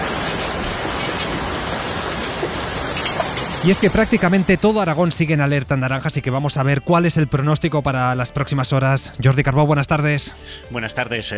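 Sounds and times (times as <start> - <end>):
heavy rain and hail pouring down: 0.0 - 5.0
speech: 3.6 - 11.3.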